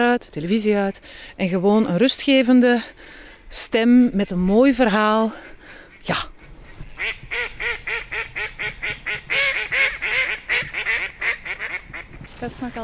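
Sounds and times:
speech: 0.0 - 6.3, 7.0 - 9.0, 12.4 - 12.8
ducks quacking: 6.6 - 12.4.

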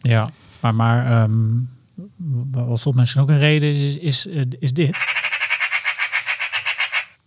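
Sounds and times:
speech: 0.0 - 5.2
magpie chattering: 4.9 - 7.2.

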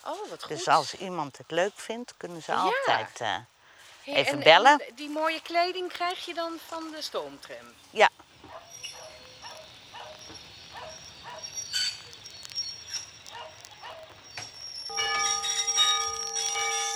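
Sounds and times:
speech: 0.0 - 8.2
large massive white platform bell announcing museum steam tram departure: 14.9 - 16.9.

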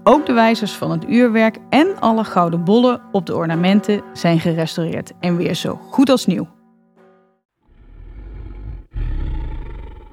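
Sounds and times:
speech: 0.0 - 6.6
deep rumbling dragon roar: 7.7 - 10.1.

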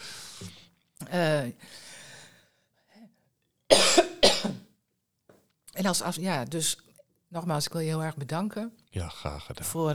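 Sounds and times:
brief small vocal sound: 0.0 - 0.6
speech: 1.1 - 1.9, 5.8 - 9.9
harsh broadband coughs: 3.7 - 4.7.

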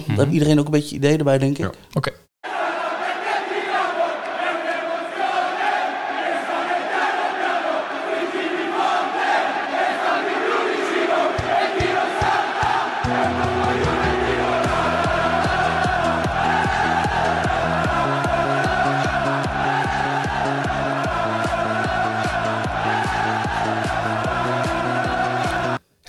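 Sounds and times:
speech: 0.0 - 2.2
large crowd of football supporters chanting a song: 2.4 - 26.0
pounding drum: 11.3 - 15.7.

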